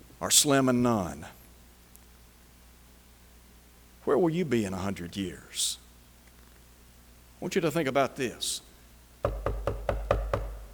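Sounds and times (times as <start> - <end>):
speech: 0.2 - 1.4, 4.1 - 5.8, 7.4 - 8.6, 9.2 - 9.5
firm knocking on a door: 9.2 - 10.7.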